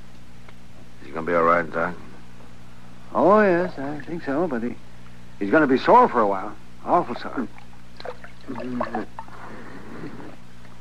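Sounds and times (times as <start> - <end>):
speech: 1.2 - 2.0, 3.1 - 4.8, 5.4 - 7.6, 8.5 - 9.2
water trickling and dripping: 7.5 - 9.2.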